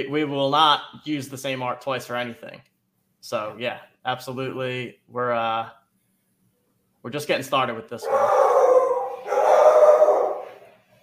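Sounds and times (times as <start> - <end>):
speech: 0.0 - 5.8, 7.0 - 8.5
dog barking: 8.0 - 10.7.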